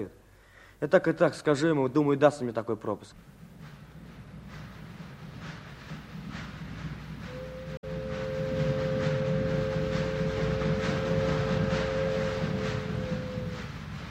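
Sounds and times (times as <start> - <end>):
speech: 0.0 - 0.2, 0.8 - 3.4
train rumbling in with low roar: 3.1 - 14.1
long steady train whistle or horn: 7.2 - 14.1.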